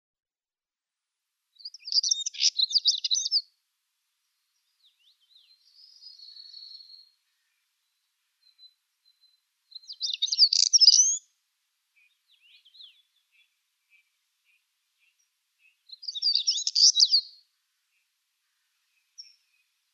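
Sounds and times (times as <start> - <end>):
Siberian Stonechat singing: 1.6 - 3.4, 8.5 - 11.2, 15.6 - 17.4.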